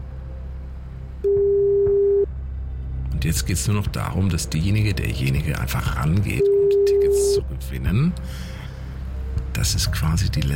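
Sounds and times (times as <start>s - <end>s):
phone line ringing tone of an outgoing call: 1.3s - 2.3s, 6.4s - 7.4s
speech: 3.2s - 6.9s, 7.7s - 8.5s, 9.6s - 10.5s.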